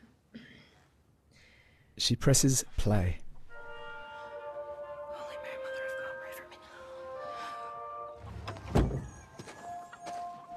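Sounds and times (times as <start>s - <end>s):
speech: 2.0s - 3.2s
door shutting outside: 8.2s - 9.5s.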